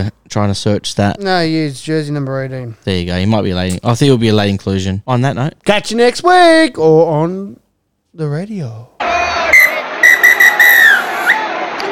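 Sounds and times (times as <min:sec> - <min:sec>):
speech: 0:00.0 - 0:07.6, 0:08.2 - 0:09.3
referee's whistle blasts: 0:09.4 - 0:11.5.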